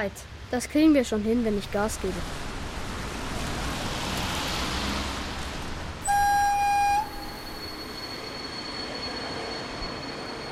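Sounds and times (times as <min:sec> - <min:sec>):
speech: 0:00.0 - 0:02.4
Intercity Express high-speed train to Berlin running on rails: 0:02.2 - 0:10.5.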